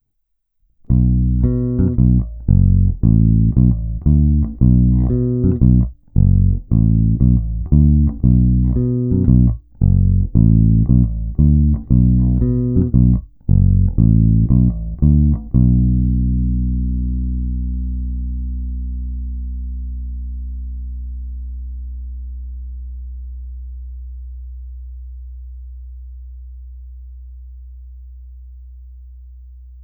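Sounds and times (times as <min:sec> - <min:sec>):
electric guitar with both pickups in parallel: 0:00.9 - 0:18.5.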